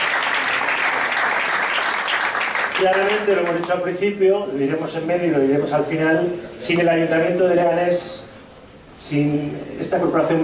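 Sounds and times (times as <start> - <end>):
audience applause at a public football-related event: 0.0 - 3.6
speech: 2.8 - 8.3, 9.0 - 10.4.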